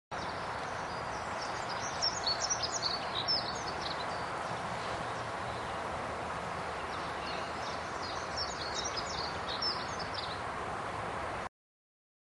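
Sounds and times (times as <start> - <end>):
steady broadband background noise: 0.1 - 11.5
dunnock warbling song: 0.2 - 5.8, 6.7 - 10.4.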